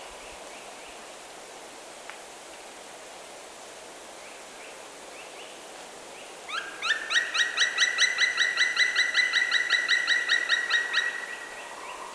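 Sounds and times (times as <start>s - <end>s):
black woodpecker call: 6.5s - 12.1s.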